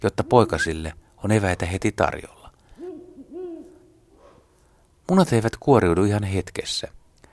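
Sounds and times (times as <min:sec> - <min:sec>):
Ural owl giving deep resonant hoots: 0:00.0 - 0:01.8, 0:02.7 - 0:04.6
speech: 0:00.0 - 0:02.4, 0:05.1 - 0:07.0.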